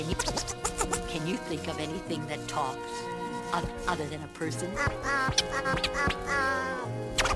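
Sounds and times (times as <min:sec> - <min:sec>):
parrot making nasal buzzy calls and raspy squawks: 0:00.1 - 0:01.1, 0:04.6 - 0:07.3
speech: 0:01.6 - 0:07.3.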